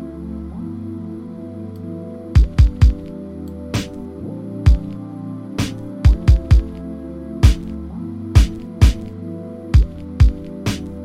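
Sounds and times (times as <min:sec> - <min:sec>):
mellow sustained chord progression in a lo-fi beat: 0:00.0 - 0:11.0
punchy kick drum hits in a lo-fi beat: 0:02.4 - 0:03.0, 0:06.1 - 0:06.7, 0:09.8 - 0:10.4.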